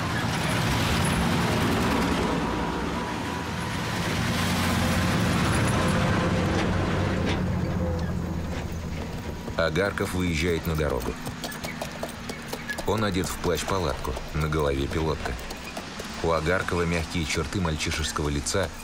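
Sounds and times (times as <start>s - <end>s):
heavy military trucks rumbling along a road: 0.0s - 18.8s
speech: 9.6s - 11.3s, 12.9s - 15.5s, 16.2s - 18.8s.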